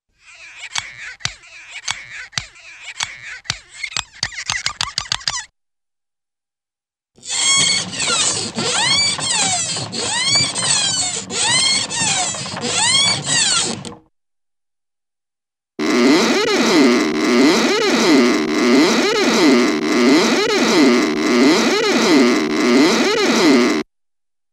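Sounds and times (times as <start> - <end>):
cartoon windshield wiper squeaks: 7.2 - 14.0, 15.8 - 23.8.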